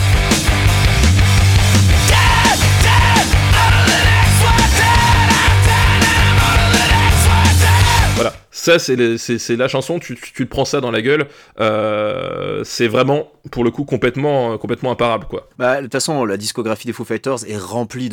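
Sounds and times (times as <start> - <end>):
pounding drums: 0.0 - 8.3
heavy distorted guitar riff: 0.0 - 8.4
vocalist screaming over rock music: 1.9 - 8.4
speech: 8.7 - 18.1.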